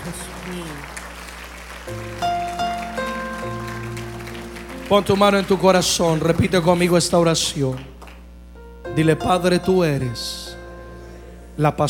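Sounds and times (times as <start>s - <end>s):
crowd applauding in a large room: 0.0s - 8.3s
speech: 0.1s - 1.0s, 1.8s - 2.4s, 4.9s - 7.9s, 9.0s - 10.4s, 11.6s - 11.8s
sustained keyboard chords: 1.6s - 11.8s.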